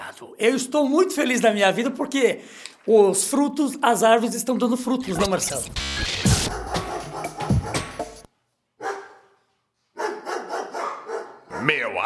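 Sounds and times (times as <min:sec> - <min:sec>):
speech: 0:00.2 - 0:06.3
dog barking: 0:06.4 - 0:08.0, 0:08.8 - 0:11.8.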